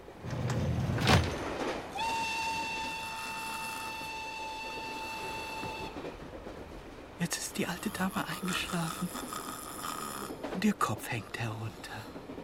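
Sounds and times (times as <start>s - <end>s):
train running: 0.0s - 12.4s
long train whistle: 1.9s - 6.4s
speech: 7.6s - 9.5s, 10.6s - 12.2s.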